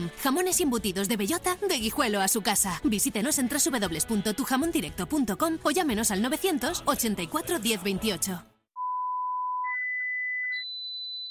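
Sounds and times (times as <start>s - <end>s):
speech: 0.0s - 8.5s
electronic beeping tones in an advertisement: 8.8s - 11.2s.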